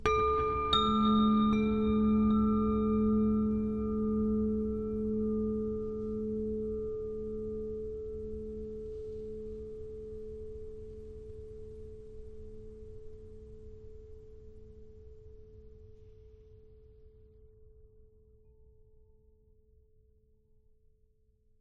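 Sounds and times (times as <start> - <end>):
low ambient abstract chimes: 0.0 - 11.6.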